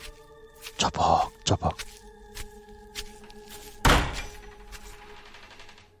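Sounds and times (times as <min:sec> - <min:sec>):
speech: 0:00.8 - 0:02.0
loose greenhouse back door banging: 0:03.8 - 0:05.9.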